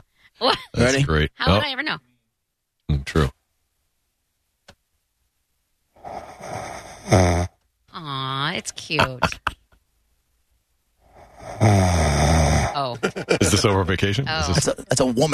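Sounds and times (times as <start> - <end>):
speech: 0.4 - 2.1, 2.9 - 3.4, 8.6 - 9.6, 11.6 - 15.3
small soft snores: 6.0 - 7.5, 11.0 - 13.7
laughter: 8.9 - 9.7, 12.8 - 15.1.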